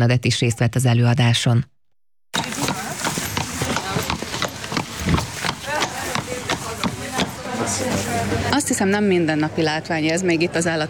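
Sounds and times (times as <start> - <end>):
speech: 0.0 - 1.8, 7.7 - 10.8
horse hooves clip-clopping on a hard floor in a veterinary university hall: 2.4 - 8.2
murmur of voices: 2.4 - 10.8.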